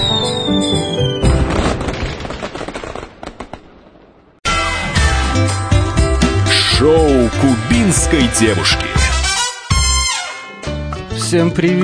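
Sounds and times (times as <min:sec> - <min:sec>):
music: 0:00.0 - 0:01.8, 0:04.4 - 0:11.8
fireworks popping and crackling: 0:01.4 - 0:04.2
speech: 0:07.5 - 0:09.1, 0:11.3 - 0:11.8.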